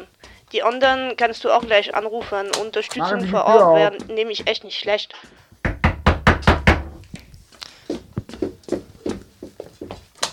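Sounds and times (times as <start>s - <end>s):
softer irregular tapping and thuds: 0.2s - 4.6s, 5.6s - 7.1s
speech: 0.5s - 5.4s
police knocking loudly on a front door: 5.6s - 7.0s.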